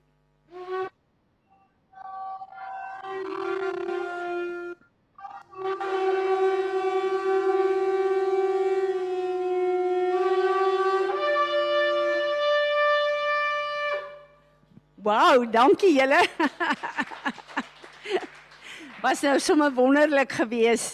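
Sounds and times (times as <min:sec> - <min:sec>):
ram's horn shofar being blown: 0:00.5 - 0:01.0, 0:02.0 - 0:14.5
speech: 0:15.1 - 0:17.4, 0:19.0 - 0:20.9
laughter: 0:15.9 - 0:19.0.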